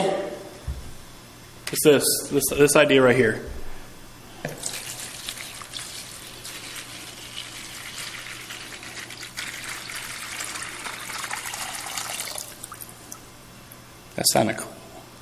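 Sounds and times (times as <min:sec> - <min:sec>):
speech: 0:01.7 - 0:03.6, 0:14.2 - 0:14.8
water pouring: 0:04.5 - 0:13.2.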